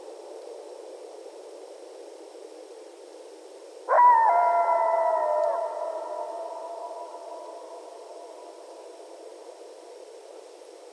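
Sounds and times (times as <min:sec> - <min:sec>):
coyotes howling together at night: 0:03.9 - 0:10.2.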